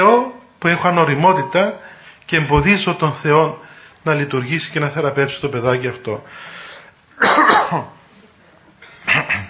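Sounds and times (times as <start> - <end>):
speech: 0.0 - 8.0, 9.0 - 9.4
person coughing: 7.2 - 8.0, 9.0 - 9.4.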